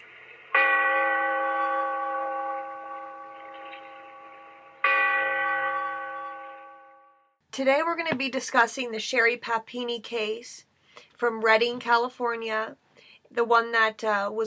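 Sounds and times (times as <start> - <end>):
deep church bell tolling: 0.0 - 7.3
speech: 7.6 - 14.4.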